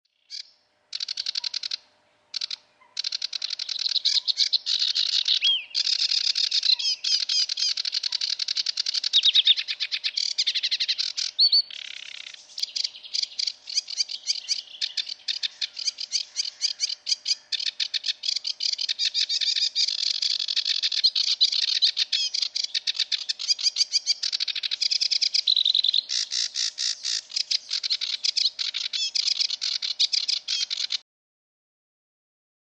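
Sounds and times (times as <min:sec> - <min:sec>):
sedge warbler: 0:00.1 - 0:31.0.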